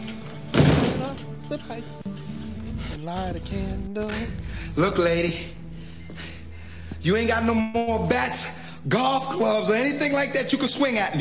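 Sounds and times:
door being shut: 0:00.0 - 0:01.3
speech: 0:01.5 - 0:02.4, 0:03.0 - 0:05.6, 0:07.0 - 0:11.1.

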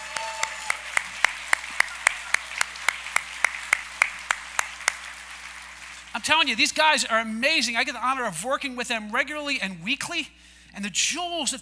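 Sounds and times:
audience applause of evenly spaced hand claps: 0:00.0 - 0:06.1
speech: 0:06.2 - 0:11.5.

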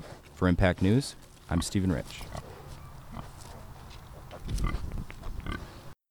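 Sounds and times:
speech: 0:00.4 - 0:02.5
piglets and gilts grunting and oinking while nesting and rooting: 0:01.5 - 0:05.9.

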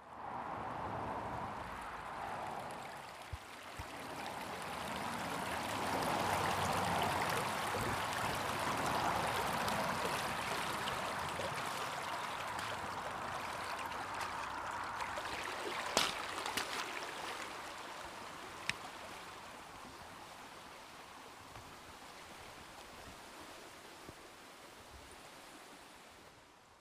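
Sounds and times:
flowing creek water with small splashes and trickles: 0:00.1 - 0:26.7.

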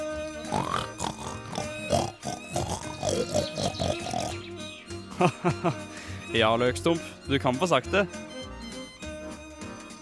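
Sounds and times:
pig grunting and oinking: 0:00.5 - 0:04.5
laughter: 0:05.1 - 0:05.9
speech: 0:05.2 - 0:08.2.

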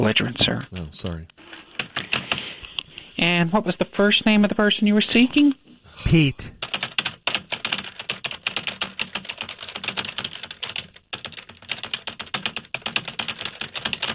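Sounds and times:
speech: 0:00.0 - 0:01.4, 0:03.2 - 0:06.6
typing on a computer keyboard: 0:06.6 - 0:14.1.

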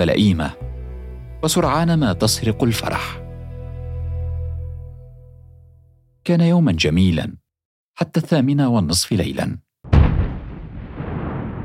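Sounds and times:
speech: 0:00.0 - 0:00.6, 0:01.4 - 0:03.2, 0:06.3 - 0:07.4, 0:08.0 - 0:09.6
heavy bomb explosion: 0:09.9 - 0:11.6.

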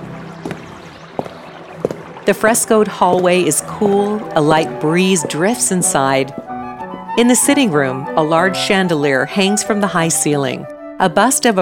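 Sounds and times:
Venetian canal water lapping around a gondola: 0:00.0 - 0:08.0
speech: 0:02.3 - 0:06.4, 0:07.2 - 0:11.6.

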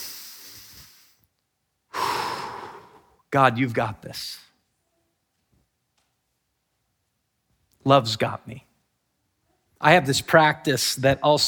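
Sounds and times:
middle-aged man taking a deep breath: 0:00.0 - 0:01.2, 0:01.9 - 0:03.2
speech: 0:03.3 - 0:04.5, 0:07.8 - 0:08.7, 0:09.8 - 0:11.4.

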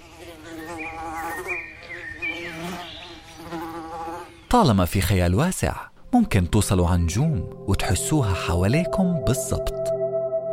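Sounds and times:
fly buzzing: 0:00.0 - 0:04.5
speech: 0:04.5 - 0:09.9.

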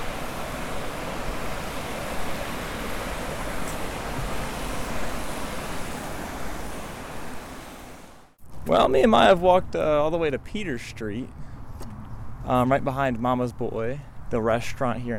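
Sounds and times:
rushing river water: 0:00.0 - 0:08.4
speech: 0:08.7 - 0:11.5, 0:12.5 - 0:15.1.

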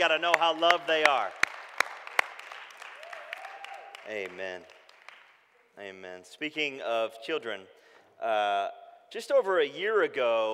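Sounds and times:
speech: 0:00.0 - 0:01.4, 0:04.0 - 0:04.8, 0:05.8 - 0:10.5
audience applauding: 0:00.0 - 0:05.7.

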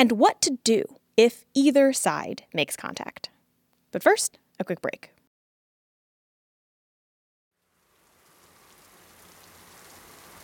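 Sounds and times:
speech: 0:00.0 - 0:03.3, 0:03.9 - 0:05.2
steady rain pattering on surfaces: 0:07.6 - 0:10.4.

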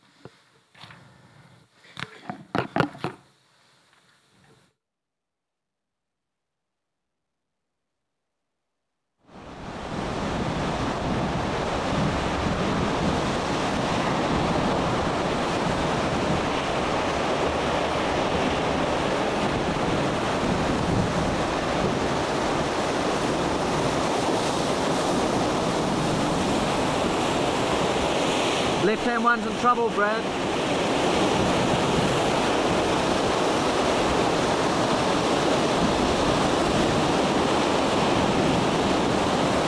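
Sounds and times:
roaring wind in a storm: 0:09.4 - 0:28.9, 0:30.2 - 0:39.6
waves crashing in a storm: 0:09.4 - 0:39.6
speech: 0:29.1 - 0:30.3.

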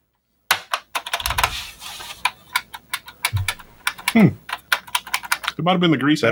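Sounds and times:
typing on a Model F reproduction keyboard: 0:00.8 - 0:01.6, 0:02.2 - 0:05.6
speech: 0:04.2 - 0:04.4, 0:05.6 - 0:06.3.

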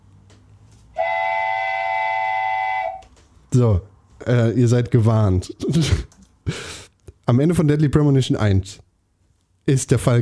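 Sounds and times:
loud steady whistle blast: 0:01.0 - 0:03.1
speech: 0:03.5 - 0:06.6, 0:07.3 - 0:08.8, 0:09.6 - 0:10.1.

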